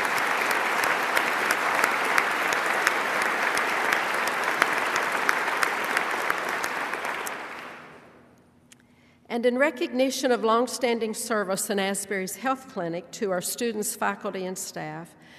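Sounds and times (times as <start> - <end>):
sustained audience applause from a large crowd: 0.0 - 8.1
speech: 9.4 - 15.3.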